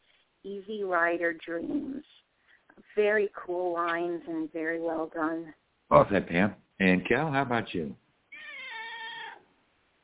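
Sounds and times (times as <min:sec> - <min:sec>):
speech: 0:00.4 - 0:02.2, 0:02.9 - 0:08.0
cat meowing: 0:08.3 - 0:09.4.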